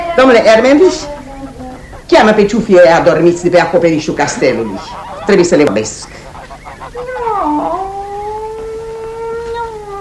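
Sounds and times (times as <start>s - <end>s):
speech: 0.2s - 1.2s, 2.2s - 6.2s
cat meowing: 7.0s - 9.9s.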